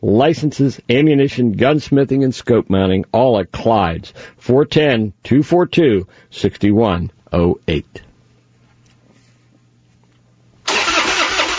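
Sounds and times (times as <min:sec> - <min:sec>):
speech: 0:00.0 - 0:08.1
truck engine cranking, failing to start: 0:10.7 - 0:11.5.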